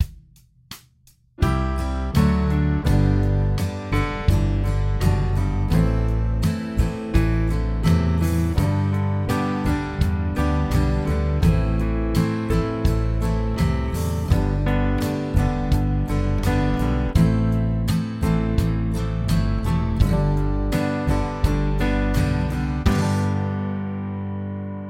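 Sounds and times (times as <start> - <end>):
single major key chords in harmony: 1.4 - 24.8.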